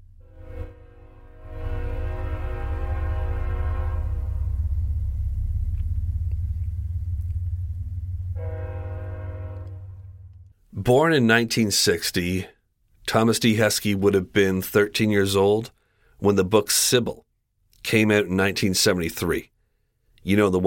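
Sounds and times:
train horn blaring: 0.0s - 5.6s, 8.1s - 10.5s
train passing with a deep steady rumble: 0.0s - 10.6s
speech: 10.8s - 17.2s, 17.8s - 19.5s, 20.2s - 20.6s.

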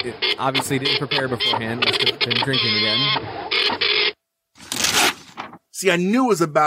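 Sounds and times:
speech: 0.0s - 4.0s, 5.8s - 6.6s
printer whirring and grinding: 0.0s - 4.2s.

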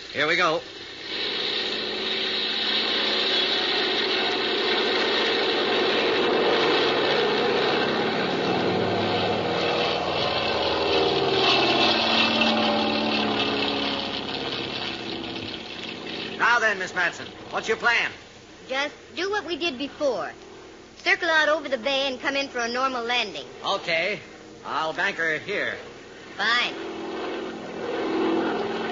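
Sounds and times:
speech: 0.2s - 1.2s, 16.7s - 20.4s, 21.0s - 26.9s
small propeller plane engine droning during takeoff: 0.8s - 18.1s, 25.1s - 28.9s.

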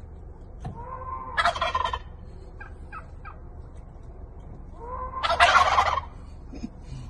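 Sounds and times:
low outdoor rumble: 0.0s - 7.0s
tom turkeys gobbling: 0.7s - 3.5s, 4.6s - 6.4s.

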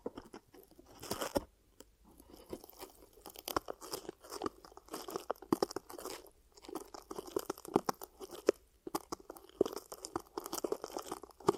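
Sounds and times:
ear cupping crinkly crunching and rustling: 0.0s - 1.5s, 2.1s - 11.5s.

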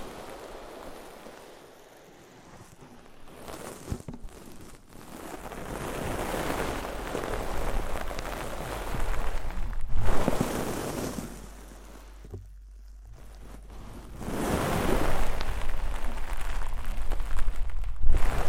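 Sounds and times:
ear cleaning rushing scratchy rubbing sounds: 0.0s - 18.4s
low steady rumble: 5.1s - 18.4s.

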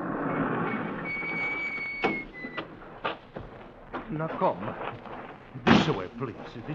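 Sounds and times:
small side door sliding open with high-pitched metallic squeal: 0.0s - 2.7s
speech: 4.1s - 6.7s.

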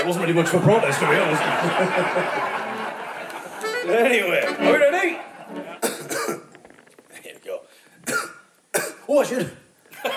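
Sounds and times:
speech: 0.0s - 2.7s, 3.8s - 5.2s, 9.2s - 10.1s
laughter: 0.1s - 6.0s
person coughing: 5.8s - 6.5s, 8.0s - 9.1s.

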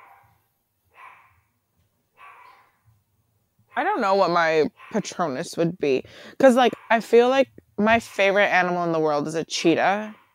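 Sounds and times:
dog barking: 0.0s - 0.4s, 1.0s - 1.4s, 2.2s - 2.8s, 4.8s - 5.1s, 6.7s - 7.0s
speech: 3.8s - 10.2s.

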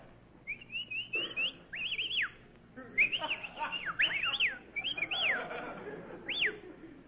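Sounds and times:
murmur of noise: 0.0s - 7.0s
loud shrill whistles to hail a taxi cab: 0.5s - 2.4s, 3.0s - 5.5s, 6.3s - 6.6s
laughter: 2.8s - 7.0s.

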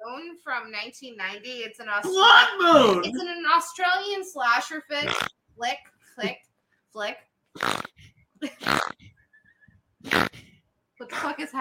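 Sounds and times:
speech: 0.2s - 7.8s, 11.2s - 11.5s
people imitating pig oinking and snorting with their voices: 5.0s - 5.3s, 8.6s - 9.1s, 10.1s - 10.4s.

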